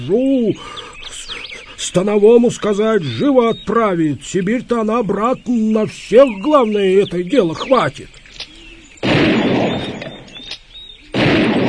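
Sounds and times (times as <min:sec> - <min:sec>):
speech: 0:00.0 - 0:00.9, 0:01.8 - 0:08.2
heavy muffled bangs rolling into a long rumbling echo: 0:09.0 - 0:10.5, 0:11.2 - 0:11.6.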